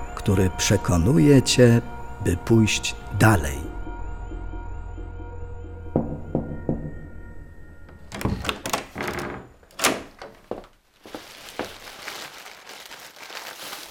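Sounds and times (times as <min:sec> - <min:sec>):
speech: 0:00.2 - 0:03.7
door opening quietly: 0:07.8 - 0:10.8
footsteps: 0:10.2 - 0:13.8
plastic shopping bag rustling: 0:10.4 - 0:13.8.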